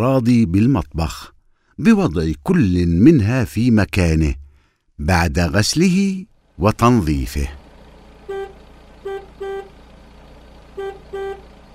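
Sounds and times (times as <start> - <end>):
speech: 0.0 - 4.4, 5.0 - 7.6
low steady car engine rumble on the road: 6.3 - 11.7
car horn honking: 8.2 - 9.8, 10.6 - 11.7.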